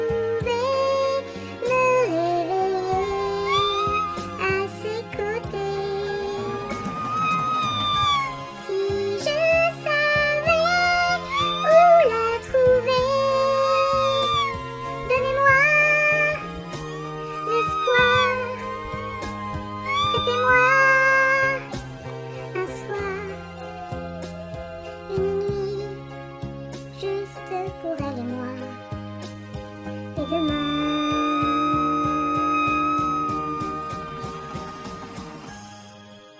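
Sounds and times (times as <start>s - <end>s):
karaoke musical backing: 0.0s - 36.3s
cat meows strung into a sung melody in a karaoke duet: 0.1s - 16.6s, 17.3s - 21.8s, 22.6s - 24.0s, 30.2s - 35.1s.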